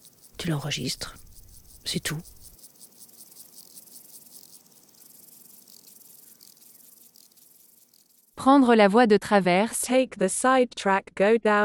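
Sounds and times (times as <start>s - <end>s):
chorus of buzzing insects: 0.0s - 8.4s
speech: 0.4s - 1.2s, 1.8s - 2.4s, 8.4s - 11.6s.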